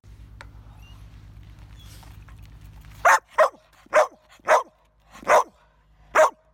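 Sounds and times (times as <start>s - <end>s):
low rumbling noise: 0.1s - 6.5s
young dog barking sharply: 3.0s - 5.6s, 6.2s - 6.4s.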